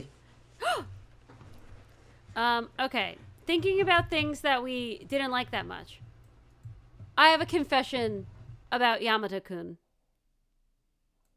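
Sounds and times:
person gasping in mock surprise: 0.6s - 1.0s
speech: 2.4s - 6.0s, 7.2s - 9.8s.

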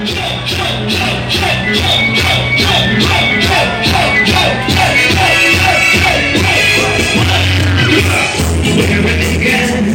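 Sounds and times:
crowd of revelers yelling and whooping: 0.0s - 8.4s
reggae music blasting from a trio elétrico carnival sound truck: 0.0s - 9.9s.

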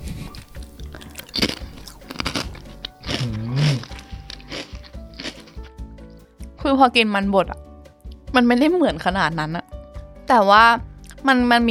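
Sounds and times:
crunching of potato chips dipped in gravy: 0.0s - 5.6s
speech: 6.7s - 7.7s, 8.4s - 9.6s, 10.3s - 11.6s.

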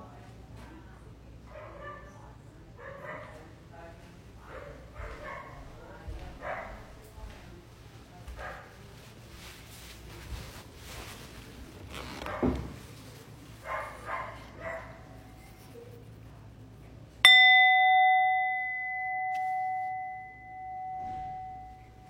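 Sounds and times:
handling sounds: 8.7s - 16.4s, 17.3s - 22.0s
small meditation bell struck in a guided Zen meditation: 17.2s - 22.0s.

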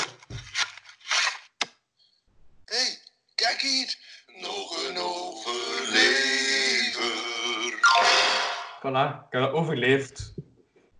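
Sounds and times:
speech: 3.5s - 5.1s, 8.8s - 10.4s
short jingle sung slightly off-key: 4.4s - 8.8s.

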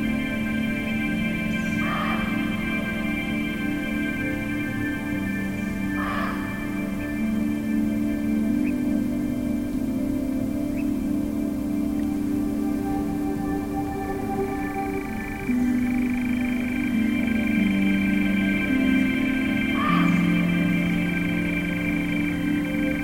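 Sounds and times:
low humming drone of layered tones: 0.0s - 23.0s
muntjac barks: 1.6s - 3.1s, 5.7s - 7.2s, 19.5s - 20.5s.

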